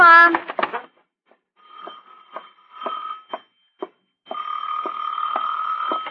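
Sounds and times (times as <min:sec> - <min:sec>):
old-fashioned telephone bell ringing: 0:01.6 - 0:06.1.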